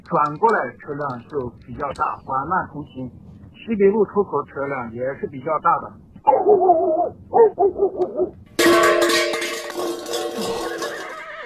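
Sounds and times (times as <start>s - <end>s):
speech: 0.1s - 9.2s
horse neigh sound effect: 10.4s - 11.4s.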